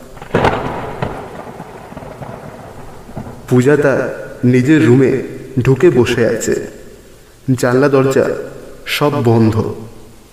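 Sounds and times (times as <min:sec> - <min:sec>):
sharp loud thunder crack rumbling: 0:00.0 - 0:05.8
heavy afternoon rain pouring: 0:00.0 - 0:10.3
speech: 0:03.5 - 0:06.8, 0:07.5 - 0:09.9.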